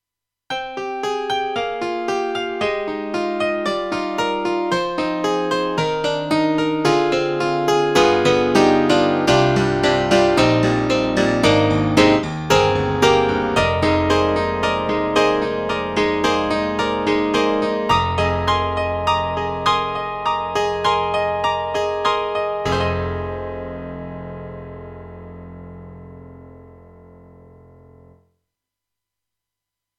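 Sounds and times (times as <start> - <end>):
hammer piano: 0.6 - 27.3.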